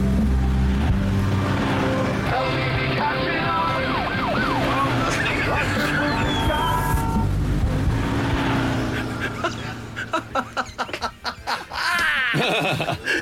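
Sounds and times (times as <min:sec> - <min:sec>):
road traffic rumble: 0:00.0 - 0:13.2
emergency vehicle siren passing outside a window: 0:00.7 - 0:07.4
laughter: 0:08.9 - 0:13.2.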